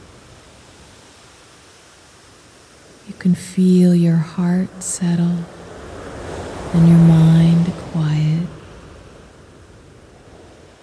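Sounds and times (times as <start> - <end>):
ocean waves washing on a beach: 0.0 - 10.8
speech: 3.2 - 5.6, 6.7 - 8.6.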